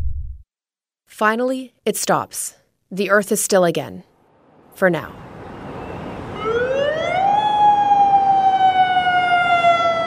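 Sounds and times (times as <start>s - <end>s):
speech: 1.2s - 4.1s, 4.8s - 5.3s
tsunami warning siren wailing in Tofino: 4.4s - 10.0s.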